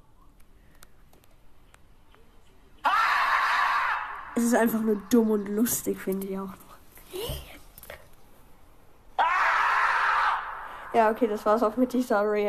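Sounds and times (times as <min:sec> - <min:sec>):
marmot screaming: 0:02.8 - 0:04.9, 0:09.2 - 0:11.0
speech: 0:04.4 - 0:06.6, 0:11.0 - 0:12.4.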